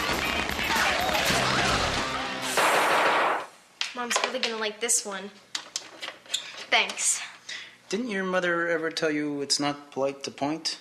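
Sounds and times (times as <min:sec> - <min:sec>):
dense chaotic wash of noise: 0:00.0 - 0:03.5
squib blasts faking gunshots: 0:02.5 - 0:03.5
speech: 0:04.0 - 0:05.5, 0:06.7 - 0:07.3, 0:07.9 - 0:10.7.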